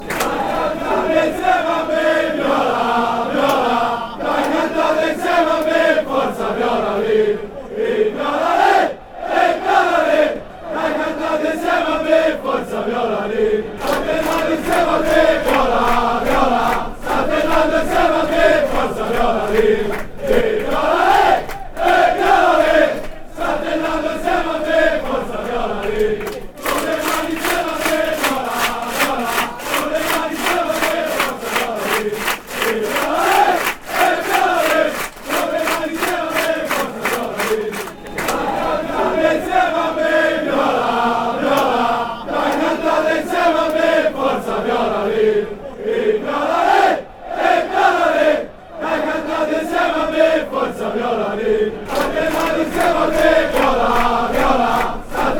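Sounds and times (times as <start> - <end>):
fans chanting: 0.0 - 55.3.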